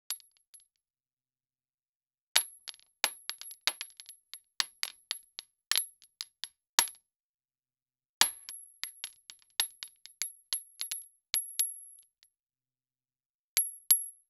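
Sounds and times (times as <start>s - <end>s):
bullet shell ejected from gun: 0.1s - 0.8s, 2.4s - 7.0s, 8.2s - 12.1s, 13.6s - 14.2s.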